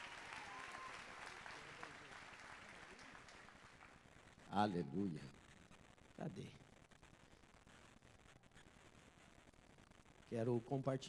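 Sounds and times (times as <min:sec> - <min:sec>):
audience clapping: 0:00.0 - 0:04.5
speech: 0:04.5 - 0:05.4, 0:06.2 - 0:06.7, 0:10.3 - 0:11.0.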